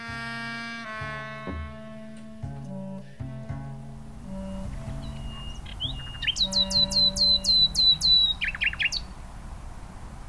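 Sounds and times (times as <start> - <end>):
soft sustained instrumental music: 0.0 - 8.3
common nightingale singing whistled notes and trills: 3.9 - 9.2.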